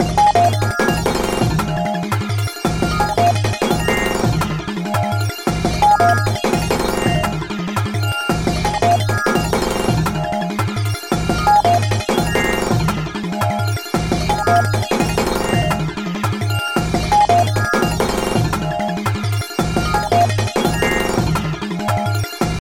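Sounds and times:
uplifting beat: 0:00.0 - 0:22.6.

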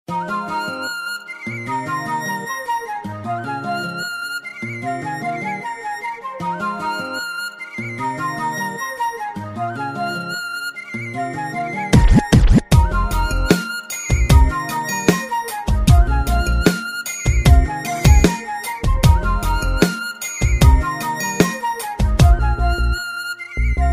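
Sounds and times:
Chinese classical flute music: 0:00.1 - 0:23.9.

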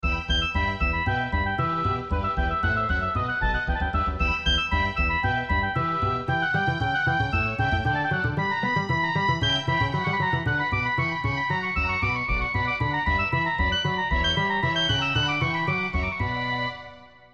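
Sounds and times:
classical ringtone melody: 0:00.1 - 0:16.9.

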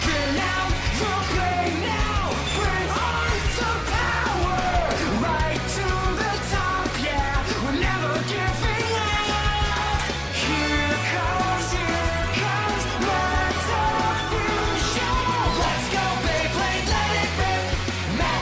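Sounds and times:
metal fusion music: 0:00.0 - 0:18.4.

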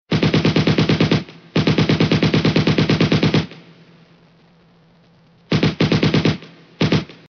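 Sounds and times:
gunfire: 0:00.1 - 0:03.8, 0:05.5 - 0:07.2.

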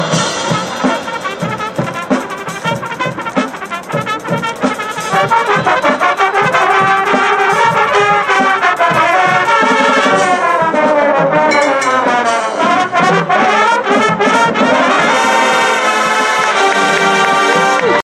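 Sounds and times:
brass feature ringtone: 0:00.1 - 0:18.0.

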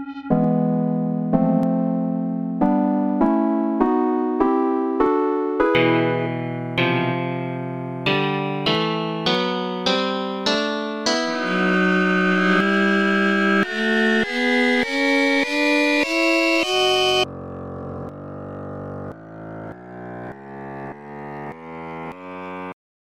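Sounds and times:
C minor scale: 0:00.3 - 0:17.3.

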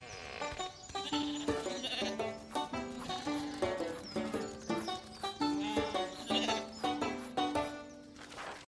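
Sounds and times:
guitar: 0:00.4 - 0:08.3
banjo: 0:01.4 - 0:08.0.

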